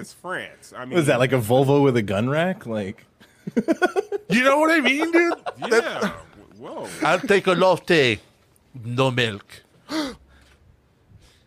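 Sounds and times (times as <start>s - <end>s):
speech: 0.0s - 10.2s
laughter: 3.2s - 7.7s
sharp breathy intake of air: 9.8s - 10.6s
soft airy breaths: 9.8s - 11.4s.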